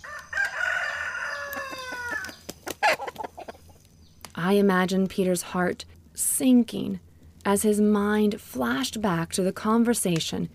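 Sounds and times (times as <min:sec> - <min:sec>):
rooster crowing: 0:00.0 - 0:03.1
clucking: 0:01.5 - 0:03.8
speech: 0:04.4 - 0:10.5.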